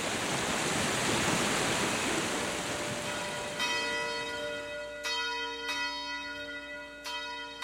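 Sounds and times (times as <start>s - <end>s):
steady rush of flowing water: 0.0s - 7.6s
clock tower bell beside the town hall ringing: 2.8s - 7.6s.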